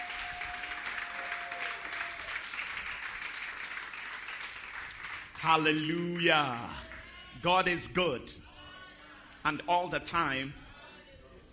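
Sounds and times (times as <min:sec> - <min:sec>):
crowd applauding: 0:00.0 - 0:07.0
speech: 0:05.4 - 0:08.4, 0:09.4 - 0:10.6.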